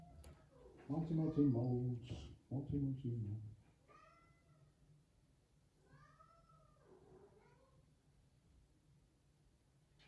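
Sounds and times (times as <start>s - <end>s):
speech: 1.1s - 3.6s
tomcat meowing complainingly: 3.9s - 4.8s, 5.8s - 7.9s.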